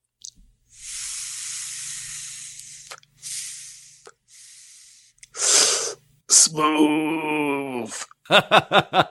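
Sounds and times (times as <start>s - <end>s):
loud forceful exhale of cannabis smoke: 0.7s - 6.0s
person inhaling cannabis smoke: 0.7s - 6.1s
speech: 6.5s - 7.3s, 8.3s - 9.0s
laughter: 8.3s - 9.0s.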